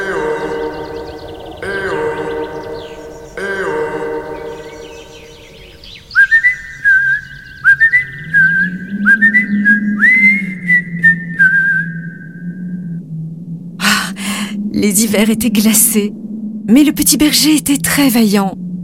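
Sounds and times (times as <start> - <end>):
long sung vocal calls: 0.0 - 16.6
shrill whistling through fingers: 6.1 - 12.9
speech: 15.0 - 18.6.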